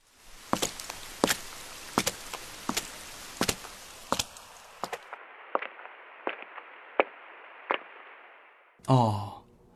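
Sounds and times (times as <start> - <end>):
rain hissing: 0.0 - 8.8
footsteps crunching in rain: 0.3 - 5.7
speech: 8.9 - 9.3.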